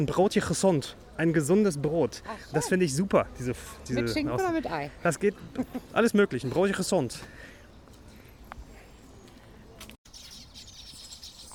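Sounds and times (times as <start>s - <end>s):
speech: 0.0s - 7.5s
birds chirping and calling in an enclosed zoo aviary: 3.6s - 11.5s.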